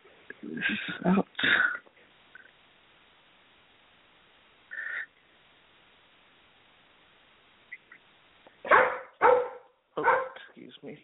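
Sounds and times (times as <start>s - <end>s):
speech: 0.5s - 1.8s
dog barking in the room: 8.6s - 10.5s.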